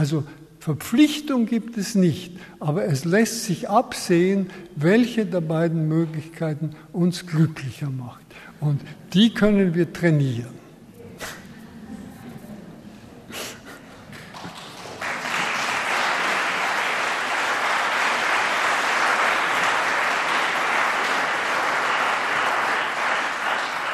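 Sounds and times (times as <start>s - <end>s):
speech: 0.0s - 10.6s
audience applause: 14.1s - 23.9s.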